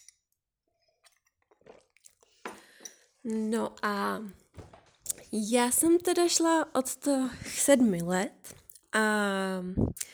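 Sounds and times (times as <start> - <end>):
tea being sipped from a cup: 1.0 - 3.4
speech: 3.2 - 4.4, 5.3 - 10.1.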